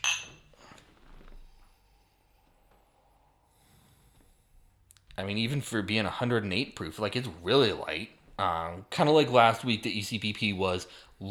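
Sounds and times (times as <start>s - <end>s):
two glasses of 108-proof spirit clinking in a toast: 0.0s - 0.8s
speech: 5.2s - 11.2s.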